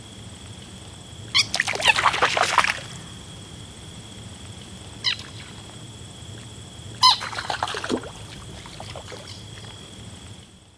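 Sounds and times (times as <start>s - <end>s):
steady outdoor hum: 0.0s - 10.7s
green frogs splashing into water: 1.4s - 3.1s, 7.0s - 9.8s
green frog alarm squeaks: 7.0s - 7.6s.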